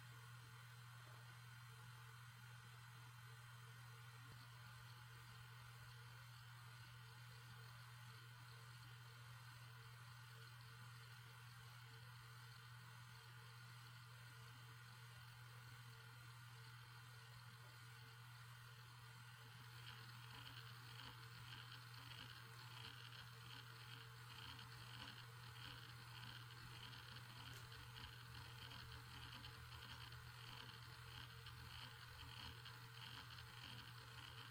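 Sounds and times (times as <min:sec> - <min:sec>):
Hitachi 7K1000 750 hard drive: 0:00.1 - 0:34.4.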